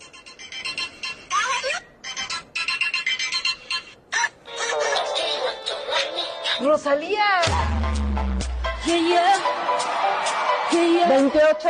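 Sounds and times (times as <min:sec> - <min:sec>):
phone ringtone with bright fast electronic melody: 0:00.0 - 0:06.6
speech: 0:06.6 - 0:08.0, 0:08.9 - 0:11.6.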